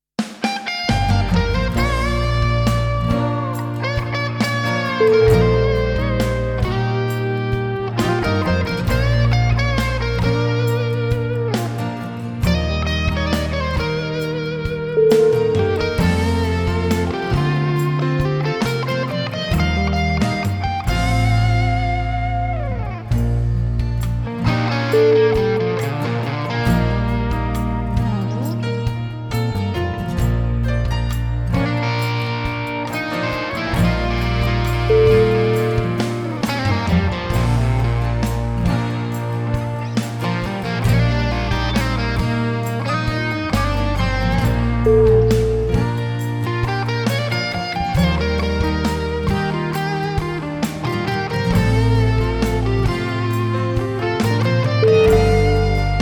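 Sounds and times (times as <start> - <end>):
rocking guitar ballad: 0.2 - 56.0.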